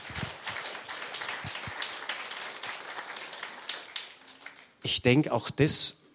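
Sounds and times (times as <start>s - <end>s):
crowd applauding: 0.0s - 4.8s
speech: 4.8s - 6.0s.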